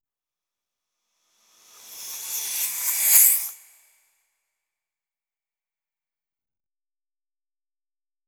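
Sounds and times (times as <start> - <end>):
weaving sound: 1.4 - 3.9
shimmering sound: 1.4 - 4.0
hiss: 1.5 - 3.9.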